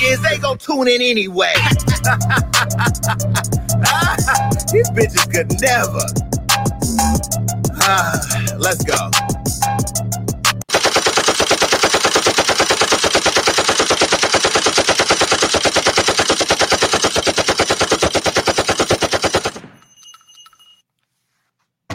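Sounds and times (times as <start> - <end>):
speech: 0.1 - 6.4, 7.1 - 10.2
laughter: 1.5 - 5.9
machine gun fire: 10.7 - 19.9.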